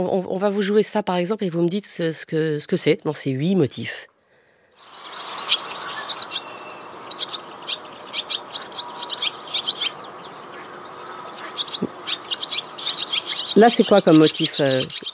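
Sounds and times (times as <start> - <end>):
speech: 0.0 - 4.1, 13.6 - 15.0
barn swallow singing a fast jumbled twitter: 4.8 - 15.1.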